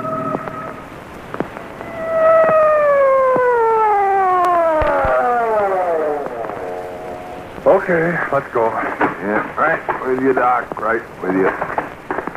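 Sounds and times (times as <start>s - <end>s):
crackly rain-like patter: 0.0s - 12.3s
emergency vehicle siren wailing: 1.6s - 7.7s
speech: 7.9s - 12.0s.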